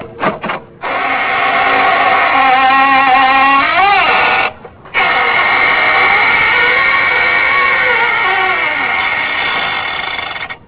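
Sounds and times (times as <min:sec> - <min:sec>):
creaky door: 0:00.1 - 0:10.6.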